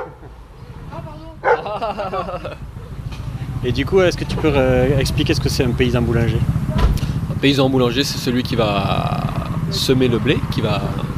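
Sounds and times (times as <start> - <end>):
dogs barking and yipping: 0.0 - 0.4, 1.4 - 2.1
low rumble: 0.0 - 11.1
laughter: 1.4 - 2.9
speech: 1.8 - 2.8, 3.6 - 6.6, 7.4 - 9.1, 9.7 - 11.0.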